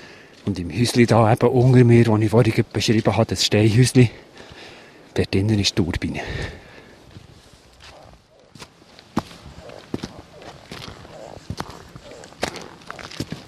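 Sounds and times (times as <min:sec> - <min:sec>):
footsteps on a mountain hiking trail above the Kandersteg valley floor: 0:00.0 - 0:05.2, 0:06.2 - 0:13.4
speech: 0:00.5 - 0:04.3, 0:05.2 - 0:06.6
rustling background: 0:07.0 - 0:13.4.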